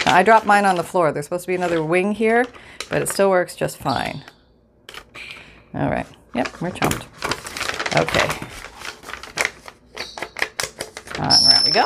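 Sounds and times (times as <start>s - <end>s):
crinkly coffee-stained paper being handled: 0.0s - 3.2s, 6.4s - 11.3s
speech: 0.1s - 4.4s, 5.7s - 7.3s, 7.9s - 8.7s, 11.2s - 11.8s.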